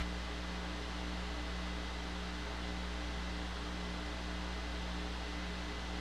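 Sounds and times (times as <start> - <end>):
white noise from a speaker: 0.0 - 5.9.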